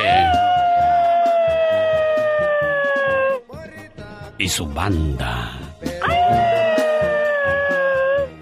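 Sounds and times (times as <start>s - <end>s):
person imitating coyote howls: 0.0s - 3.4s, 6.0s - 8.4s
speech: 4.4s - 5.6s.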